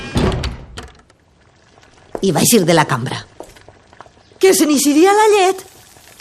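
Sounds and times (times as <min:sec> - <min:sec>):
door slamming shut with a heavy thud: 0:00.0 - 0:01.0
speech: 0:02.2 - 0:03.3, 0:04.4 - 0:05.7.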